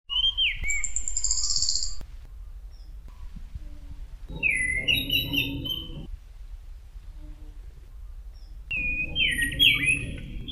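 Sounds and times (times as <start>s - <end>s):
thrush song with downward sliding whistle and sustained high note: 0.1s - 2.0s, 4.3s - 6.1s, 8.7s - 10.5s
low rumbling noise: 2.0s - 10.5s.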